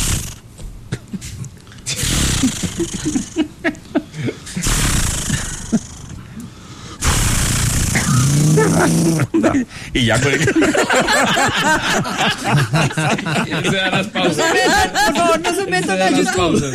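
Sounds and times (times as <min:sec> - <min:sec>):
voice imitating a chainsaw starting up: 0:01.9 - 0:03.4, 0:04.6 - 0:06.1, 0:07.0 - 0:09.4
laughter: 0:02.4 - 0:04.7, 0:08.4 - 0:16.7
speech: 0:10.0 - 0:16.7.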